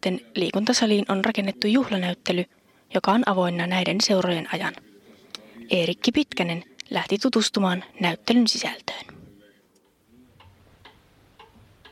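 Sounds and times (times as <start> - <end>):
speech: 0.0 - 4.9, 5.6 - 9.1
old grandfather clock ticking: 9.8 - 11.9.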